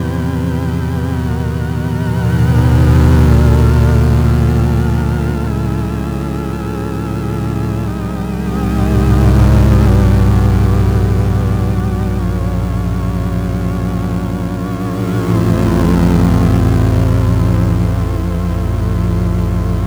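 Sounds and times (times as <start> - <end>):
synth loop: 0.0 - 19.8.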